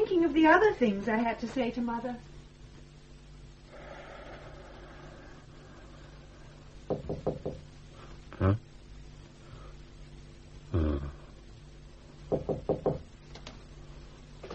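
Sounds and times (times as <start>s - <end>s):
speech: 0.2s - 2.4s, 8.4s - 8.7s
sharp knocking on a door: 6.9s - 7.7s, 12.3s - 13.1s.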